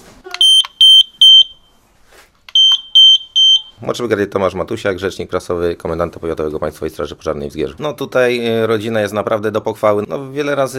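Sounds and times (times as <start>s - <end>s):
carbon monoxide detector alarm beeping in short bursts: 0.4s - 1.8s, 2.5s - 3.9s
speech: 3.8s - 10.7s.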